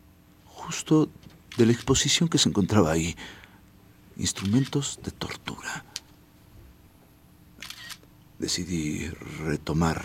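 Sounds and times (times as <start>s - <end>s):
faint quiet noise: 0.0s - 10.0s
speech: 0.7s - 3.4s, 4.2s - 5.9s, 8.4s - 10.0s
camera shutter clicking while photographing an exhibition of torture instruments: 4.3s - 4.8s, 7.6s - 8.1s.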